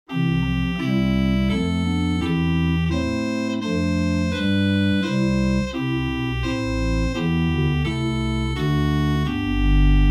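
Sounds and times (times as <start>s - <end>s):
Buzard Opus 3 organ SubBass Krumm Holz stop: 0.1s - 10.0s.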